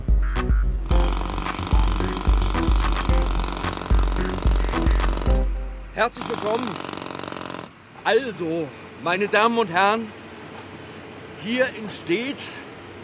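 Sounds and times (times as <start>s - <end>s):
construction site din where a hotel is being built: 0.1s - 10.7s
jackhammer pounding and rattling at a hotel construction site: 0.8s - 7.7s
speech: 6.0s - 6.9s, 8.1s - 10.2s, 11.4s - 12.6s.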